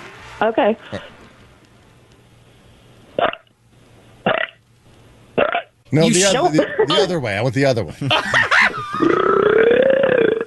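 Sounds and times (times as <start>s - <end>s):
faint low hum: 0.0s - 10.4s
speech: 0.4s - 1.2s, 5.9s - 9.2s
laughter: 6.1s - 7.2s, 7.9s - 9.2s
caller belching: 8.9s - 10.4s.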